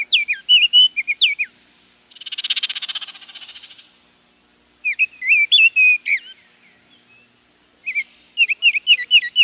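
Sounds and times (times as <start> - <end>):
oriole whistled song: 0.0 - 1.5, 4.8 - 6.4, 7.1 - 9.4.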